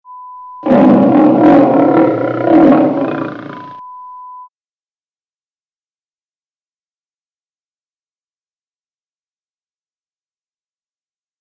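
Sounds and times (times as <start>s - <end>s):
lion sound: 0.6s - 3.8s.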